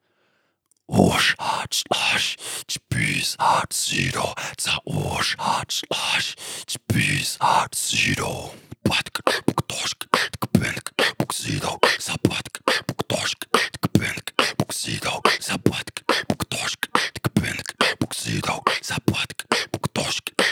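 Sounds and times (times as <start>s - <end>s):
inhaled beatbox wind technique vocal percussion: 1.1s - 20.5s
speech: 1.3s - 2.4s, 3.2s - 9.9s.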